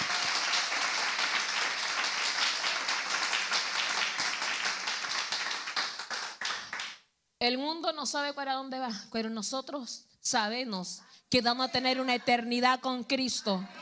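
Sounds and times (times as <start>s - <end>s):
audience applauding for the living king: 0.0s - 7.0s
speech: 7.4s - 13.8s.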